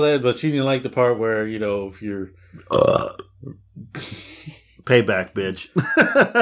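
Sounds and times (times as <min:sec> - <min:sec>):
speech: 0:00.0 - 0:06.4
faint throaty gulps: 0:02.4 - 0:04.9
loud burp: 0:02.6 - 0:04.1
laughter: 0:04.0 - 0:05.0, 0:05.6 - 0:06.4.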